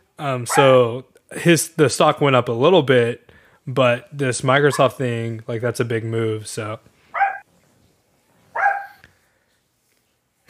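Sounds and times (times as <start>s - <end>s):
speech: 0.2s - 6.9s
small dog barking: 0.5s - 0.7s, 7.2s - 7.5s, 8.5s - 9.0s.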